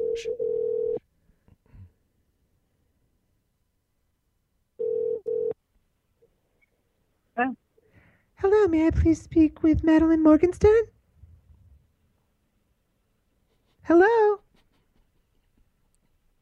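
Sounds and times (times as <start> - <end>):
steady electronic ringback tone in double bursts on an outgoing call: 0.0 - 1.0, 4.8 - 5.6
speech: 0.2 - 0.4, 7.4 - 7.6, 8.4 - 11.0, 13.9 - 14.4.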